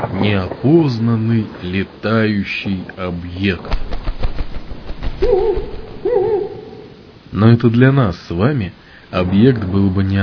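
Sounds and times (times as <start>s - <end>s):
low rustling: 0.0s - 7.5s
speech: 0.2s - 4.1s, 5.2s - 6.3s, 7.3s - 10.2s
owl hooting: 5.0s - 7.2s.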